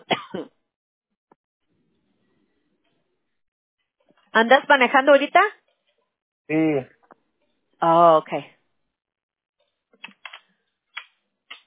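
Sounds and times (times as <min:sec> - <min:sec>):
person coughing: 0:00.0 - 0:00.5
speech: 0:04.4 - 0:05.6, 0:06.5 - 0:07.0, 0:07.8 - 0:08.6.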